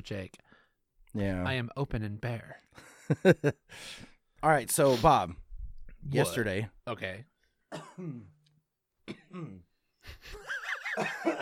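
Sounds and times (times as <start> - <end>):
speech: 0.0 - 0.4, 1.1 - 5.4, 6.0 - 8.4, 9.1 - 11.3
throat clearing: 7.7 - 8.4, 9.1 - 9.7
coughing: 7.7 - 9.7, 10.9 - 11.3.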